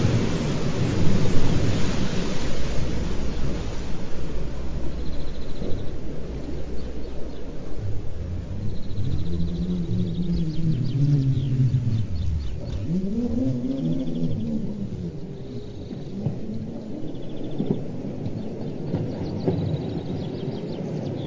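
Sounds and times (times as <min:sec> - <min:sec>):
underwater rumble: 0:00.0 - 0:21.2
whales and dolphins moaning calls: 0:05.6 - 0:18.3.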